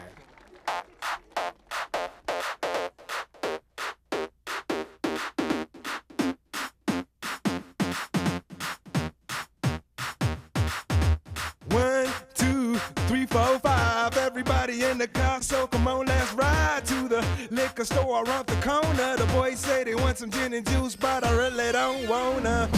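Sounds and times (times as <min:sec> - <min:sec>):
upbeat mambo-style pop song: 0:00.0 - 0:22.7
speech: 0:14.4 - 0:22.7.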